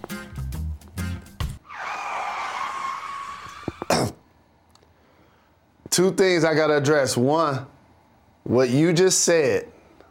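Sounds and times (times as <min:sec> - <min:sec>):
car brakes screeching: 0:01.6 - 0:03.9
speech: 0:05.9 - 0:07.7, 0:08.5 - 0:09.7.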